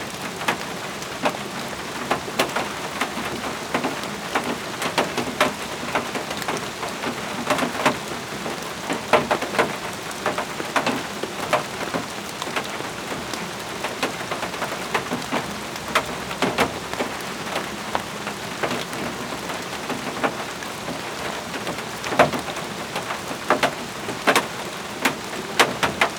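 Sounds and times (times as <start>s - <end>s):
rain on plastic outside: 0.0s - 26.1s.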